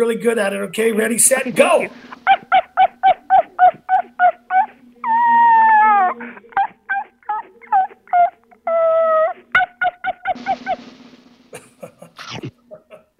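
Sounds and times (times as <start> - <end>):
speech: 0.0 - 2.4
woman's voice imitating drawn-out whining howls: 3.2 - 9.6.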